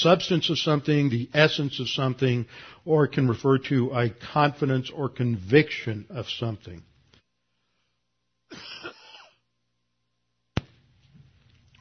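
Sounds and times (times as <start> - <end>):
speech: 0.0 - 6.9
harsh raspy throat clearing and cough: 8.5 - 9.4.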